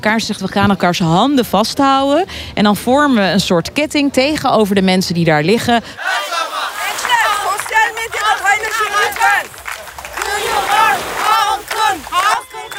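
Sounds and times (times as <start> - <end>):
speech: 0.0 - 6.2
crowd of protesters chanting slogans: 5.9 - 12.7.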